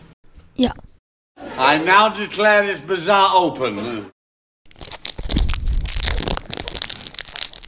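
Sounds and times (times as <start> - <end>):
speech: 0.6 - 0.9, 1.6 - 4.1
Pokémon trading card booster pack foil wrapper tearing: 4.7 - 7.6.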